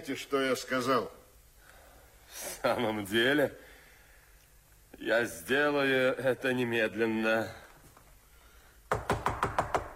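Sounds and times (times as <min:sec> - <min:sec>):
speech: 0:00.0 - 0:01.2, 0:02.3 - 0:03.6, 0:04.9 - 0:07.6
knocking on a door: 0:08.9 - 0:09.9.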